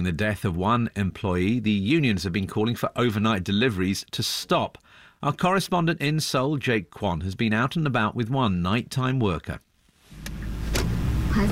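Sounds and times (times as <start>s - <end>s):
speech: 0.0s - 10.4s, 11.4s - 11.5s
delivery truck engine rumble heard inside the truck at night: 10.2s - 11.5s.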